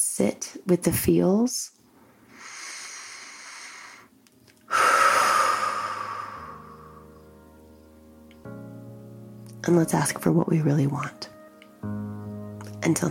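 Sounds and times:
speech: 0:00.0 - 0:01.8, 0:09.7 - 0:12.0, 0:12.8 - 0:13.0
person taking a soft airy deep inhale: 0:02.0 - 0:04.1, 0:04.7 - 0:07.2
person's louder longer breathy exhale: 0:02.0 - 0:04.1, 0:04.7 - 0:07.2.

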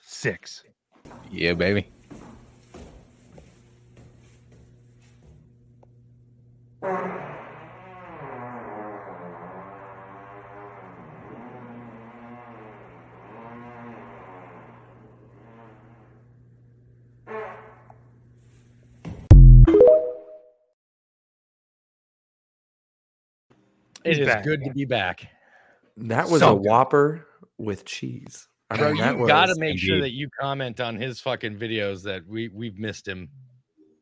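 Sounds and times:
speech: 0:00.2 - 0:02.0, 0:24.2 - 0:25.4, 0:26.0 - 0:33.4
long loud sputtering fart in an echoey space: 0:06.8 - 0:16.1, 0:17.3 - 0:18.0.

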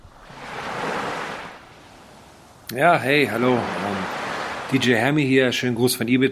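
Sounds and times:
steady roar of the sea: 0:00.0 - 0:05.9
wave washing in on a beach on Ibiza: 0:00.0 - 0:05.9
speech: 0:02.7 - 0:03.8, 0:04.7 - 0:06.3.

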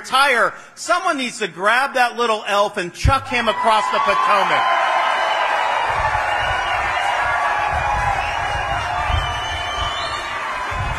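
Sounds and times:
speech: 0:00.0 - 0:05.0
large audience cheering: 0:03.3 - 0:10.9
large audience clapping: 0:04.1 - 0:10.9.

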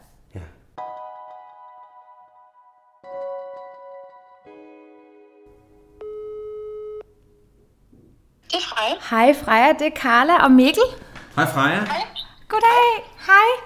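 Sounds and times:
phone line outgoing call ringing tone: 0:06.0 - 0:07.1
speech: 0:08.8 - 0:13.6.

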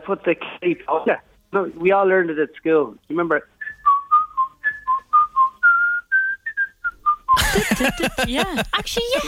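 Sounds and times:
speech: 0:00.0 - 0:03.5, 0:07.6 - 0:09.2
person whistling a lively Irish jig-style tune: 0:03.6 - 0:07.6
laughter: 0:07.4 - 0:09.2.

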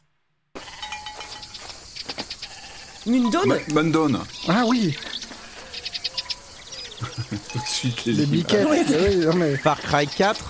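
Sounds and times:
animal noise on a farm: 0:00.6 - 0:10.4
goats bleating on a farm: 0:02.4 - 0:10.0
speech: 0:03.0 - 0:05.1, 0:07.8 - 0:10.4
laughter: 0:06.9 - 0:10.0.

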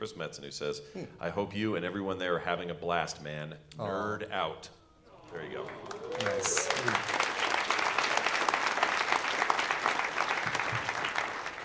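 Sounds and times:
speech: 0:00.0 - 0:07.2
live audience applause from a sizable crowd: 0:05.2 - 0:11.6.

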